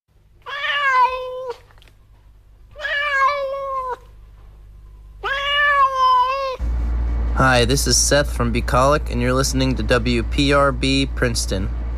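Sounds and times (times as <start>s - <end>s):
cat meowing: 0.4s - 1.7s, 2.8s - 4.2s, 5.2s - 6.6s
speech: 7.5s - 11.8s.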